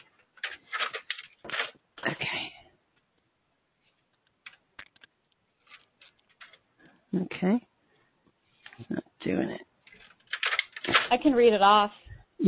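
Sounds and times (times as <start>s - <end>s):
paper rustling while being pushed into a printer tray: 0.0s - 1.8s, 3.8s - 6.7s, 9.8s - 11.4s
speech: 7.4s - 7.6s, 11.1s - 12.4s.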